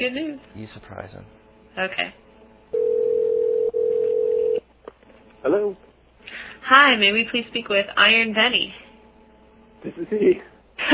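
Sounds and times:
speech: 0:00.0 - 0:02.2, 0:05.4 - 0:08.8, 0:09.8 - 0:10.9
electronic ringback tone on a conference call phone line: 0:02.7 - 0:04.6
laughter: 0:09.8 - 0:10.9.

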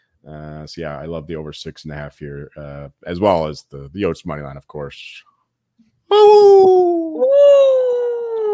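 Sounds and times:
speech: 0:00.2 - 0:05.3, 0:06.1 - 0:07.9
person imitating a coyote howl: 0:06.1 - 0:08.5.

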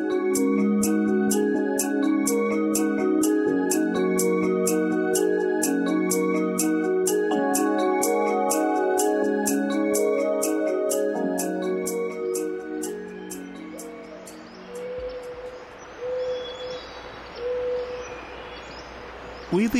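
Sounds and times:
music: 0:00.0 - 0:15.4
owl hooting in a California redwood forest: 0:00.0 - 0:18.6
hushed hissing redwood forest ambience in California: 0:00.0 - 0:19.7
faint bird chirps: 0:09.5 - 0:19.7.

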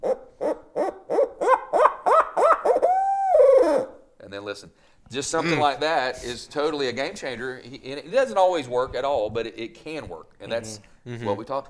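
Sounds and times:
turkey call playing a laugh sequence and locator note: 0:00.0 - 0:04.1
speech: 0:04.5 - 0:11.6.

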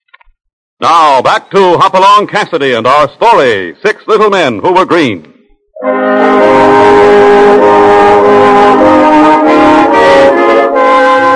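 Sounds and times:
speech: 0:00.8 - 0:09.0
train whistle blowing near Desert City, Utah: 0:05.8 - 0:11.3.

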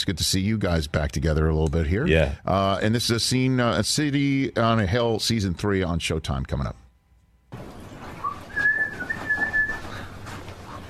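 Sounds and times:
speech: 0:00.0 - 0:06.8
low hum: 0:00.0 - 0:10.8
person whistling a short melodic tune: 0:08.2 - 0:10.0.

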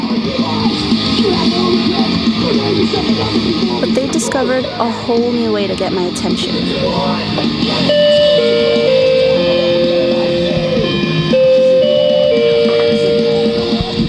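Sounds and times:
busy noisy background: 0:00.0 - 0:14.0
speech: 0:04.4 - 0:08.9
doorbell playing a slow melodic chime tune: 0:07.9 - 0:14.0.

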